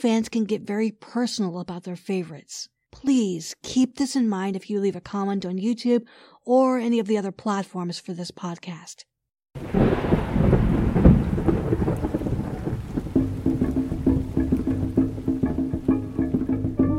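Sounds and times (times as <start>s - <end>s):
speech: 0.0s - 10.6s
heavy rolling thunder: 9.6s - 16.6s
steady rain: 9.6s - 16.8s.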